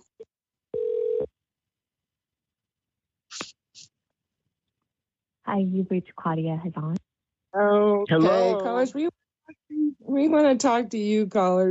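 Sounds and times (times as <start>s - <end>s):
electronic telephone tone as a call is placed: 0.7s - 1.3s
speech: 5.5s - 7.0s, 7.6s - 11.6s.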